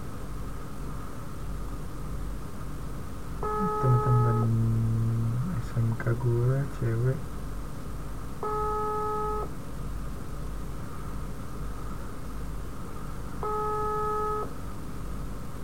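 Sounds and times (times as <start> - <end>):
steady hiss: 0.0 - 15.6
phone call ringback tones ringing unanswered: 3.4 - 4.6, 8.4 - 9.5, 13.4 - 14.5
speech: 6.1 - 7.3.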